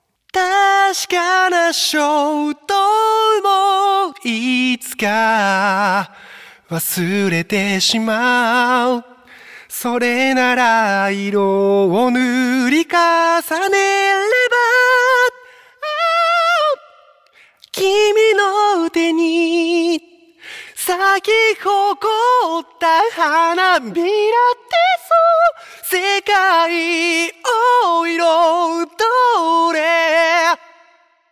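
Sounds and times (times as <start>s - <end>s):
vocal: 0.0s - 31.3s.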